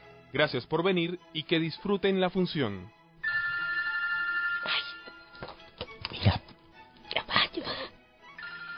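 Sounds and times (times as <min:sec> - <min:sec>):
speech: 0:00.3 - 0:03.0
mobile phone ringtone in a theatre: 0:03.2 - 0:05.5, 0:08.4 - 0:08.7.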